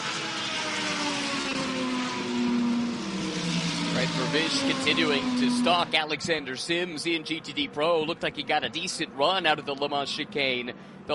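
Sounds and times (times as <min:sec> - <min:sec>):
race car engine firing up and revving after refuelling in a pit stop: 0:00.0 - 0:07.4
speech: 0:04.1 - 0:11.0.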